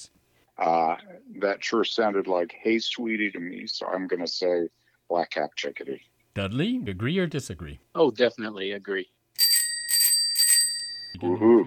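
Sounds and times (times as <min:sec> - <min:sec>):
speech: 0:00.0 - 0:09.2, 0:11.2 - 0:11.6
bright high metallic bell ringing: 0:09.4 - 0:11.2.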